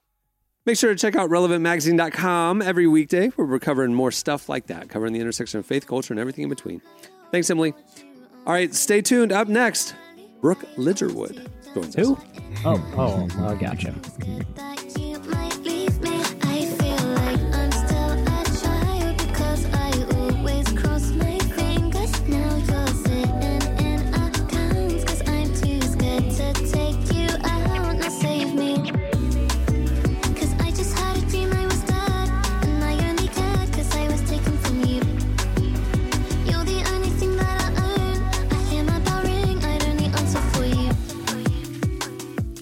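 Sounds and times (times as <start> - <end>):
speech: 0.7 - 14.6
pop song with steady beat and deep bass: 6.0 - 42.6.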